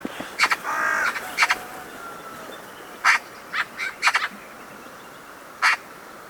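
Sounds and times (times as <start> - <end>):
Eurasian magpie Pica pica chattering: 0.4 - 1.6, 3.0 - 4.3.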